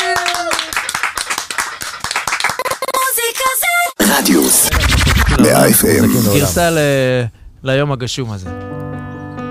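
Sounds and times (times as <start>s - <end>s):
hand claps: 0.0s - 2.8s
speech: 4.2s - 8.6s.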